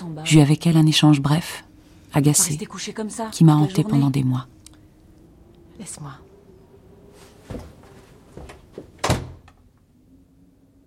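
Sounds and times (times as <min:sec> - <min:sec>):
speech: 0:00.2 - 0:04.6, 0:05.8 - 0:06.3, 0:07.5 - 0:07.7
door slamming: 0:08.5 - 0:09.6.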